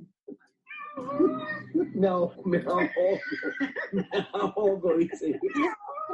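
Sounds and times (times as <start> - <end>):
cat meowing: 0.7 - 1.8, 5.4 - 6.1
laughter: 1.0 - 6.1
speech: 1.0 - 6.1.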